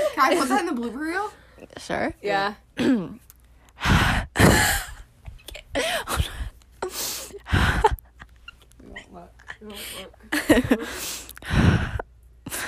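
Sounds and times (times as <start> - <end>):
speech: 0.2 - 3.9, 9.2 - 11.9
exaggerated heavy breathing close to the mic: 3.7 - 5.0, 5.7 - 8.0, 9.6 - 12.6.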